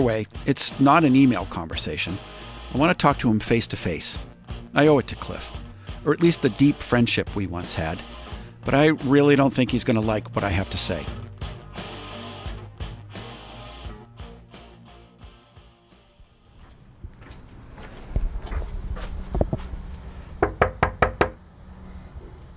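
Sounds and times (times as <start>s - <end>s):
speech: 0.0s - 11.2s
knocking on a front door: 20.4s - 21.4s.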